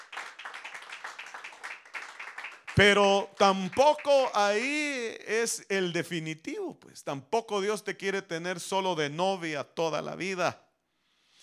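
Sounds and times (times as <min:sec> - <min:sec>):
church audience clapping hands loudly: 0:00.0 - 0:04.7
speech: 0:02.8 - 0:10.6.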